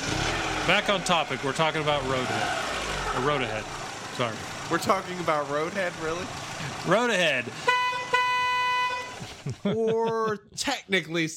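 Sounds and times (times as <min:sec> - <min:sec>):
speech: 0:00.7 - 0:07.8, 0:09.4 - 0:11.3
car horn honking: 0:07.5 - 0:09.4
laughter: 0:09.0 - 0:10.7.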